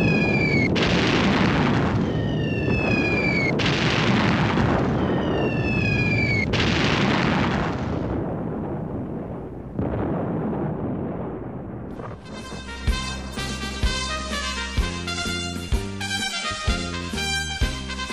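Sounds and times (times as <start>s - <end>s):
falling whistles of artillery shells: 0.0s - 0.8s, 1.7s - 3.6s, 4.7s - 6.6s
artillery shells exploding: 0.0s - 17.3s.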